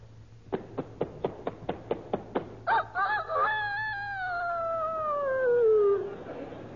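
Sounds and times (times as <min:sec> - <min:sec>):
person imitating a year-old rooster clucking and crowing: 0:02.7 - 0:06.2.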